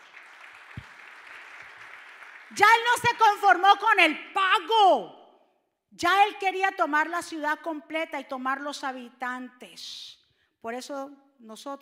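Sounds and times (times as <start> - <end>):
audience at a sermon applauding: 0.0 - 2.6
speech: 2.5 - 5.2, 5.9 - 11.8.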